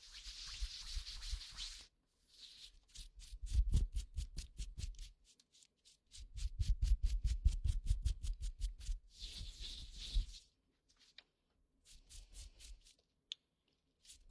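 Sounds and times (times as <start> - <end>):
goose-feather stick scratching and rustling in an ear: 0.0 - 10.4.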